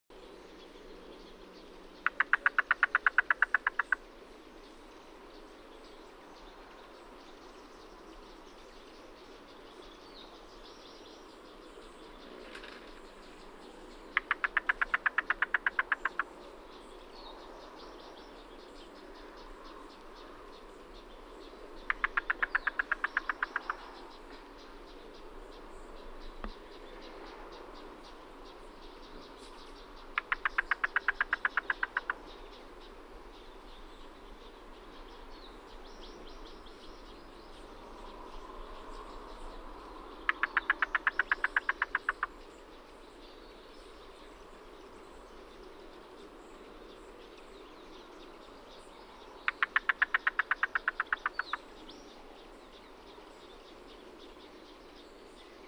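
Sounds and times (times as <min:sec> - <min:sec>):
yellow-billed cuckoo knock call: 0:02.0 - 0:04.0, 0:14.2 - 0:16.2, 0:21.9 - 0:23.8, 0:30.2 - 0:32.2, 0:40.3 - 0:42.3, 0:49.5 - 0:51.6.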